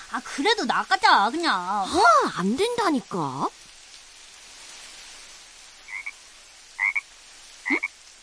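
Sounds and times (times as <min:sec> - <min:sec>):
steady rain: 0:00.0 - 0:08.2
speech: 0:00.1 - 0:03.6
frogs croaking in the rain: 0:05.6 - 0:08.1.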